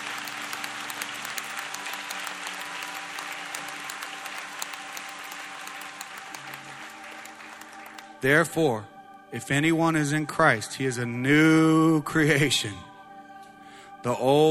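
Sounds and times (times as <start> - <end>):
audience applause: 0.0 - 8.2
speech: 8.2 - 12.9, 14.0 - 14.5.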